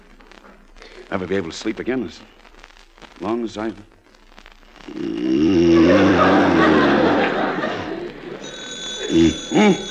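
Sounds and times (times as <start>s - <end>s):
speech: 1.1s - 2.4s, 3.2s - 4.0s, 4.9s - 5.3s, 9.1s - 9.8s
groggy vocal sounds: 4.9s - 7.7s
laughter: 5.5s - 9.8s
telephone ringing: 6.6s - 9.8s.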